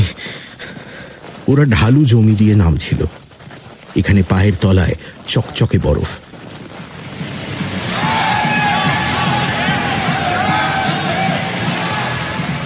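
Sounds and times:
speech: 1.5s - 3.2s, 3.9s - 6.2s
joyous shouting and whooping at a night gathering around a fire: 7.1s - 12.6s
loud music at a night gathering near a river: 7.5s - 12.6s.

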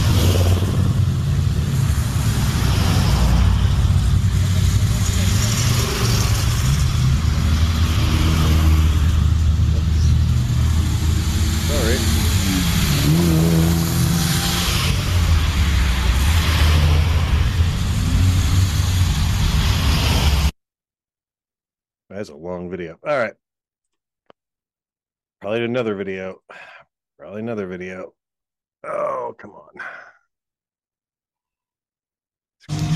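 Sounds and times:
car engine revving: 0.0s - 20.5s, 32.7s - 32.9s
speech: 22.2s - 23.4s, 25.4s - 28.2s, 28.8s - 30.1s.

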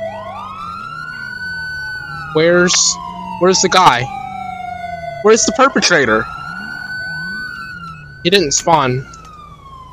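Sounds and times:
police siren wailing: 0.0s - 9.9s
speech: 2.3s - 4.2s, 5.2s - 6.4s, 8.2s - 9.1s.

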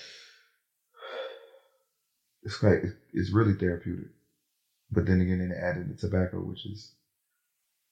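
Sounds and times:
deep airy breaths mimicking the drag of smoking: 0.0s - 1.8s
speech: 2.4s - 4.2s, 4.9s - 7.0s.

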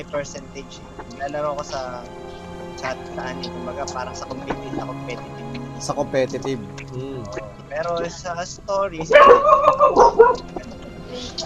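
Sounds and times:
speech: 0.0s - 11.4s
dog yipping: 9.1s - 10.4s.

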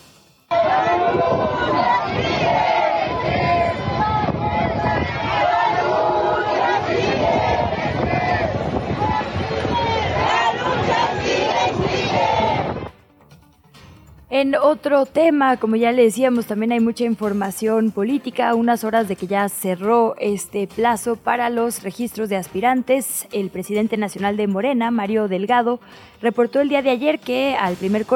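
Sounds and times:
large protest march crowd chanting and shouting: 0.5s - 13.0s
speech: 14.4s - 28.1s.

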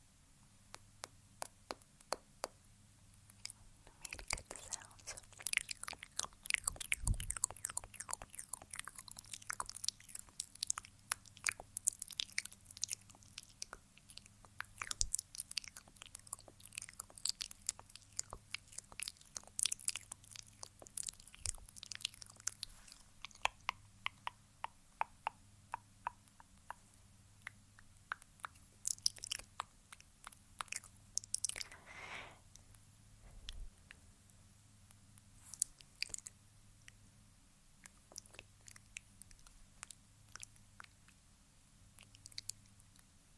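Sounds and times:
low steady hum: 0.0s - 43.3s
soft lip clicks and smacks from applying lip balm: 0.7s - 31.8s, 33.4s - 37.0s, 37.8s - 41.2s
wet mouth sounds: 3.2s - 32.8s, 35.4s - 36.4s, 37.8s - 41.2s.

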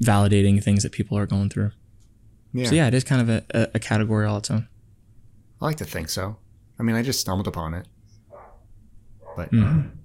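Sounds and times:
speech: 0.0s - 1.8s, 2.5s - 4.7s, 5.6s - 8.0s, 9.4s - 10.0s
steady low hum: 0.0s - 10.0s
dog bark: 8.3s - 9.5s.

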